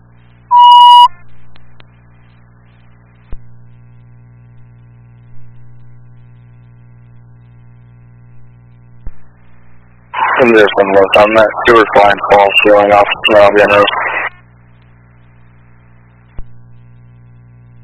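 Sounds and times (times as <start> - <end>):
low electrical hum: 0.0 - 17.8
security alarm shrill electronic beep: 0.5 - 1.1
speech: 10.4 - 14.0.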